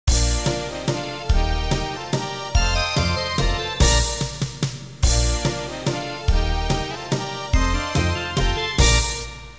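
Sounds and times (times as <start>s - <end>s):
waltz music: 0.1s - 9.5s.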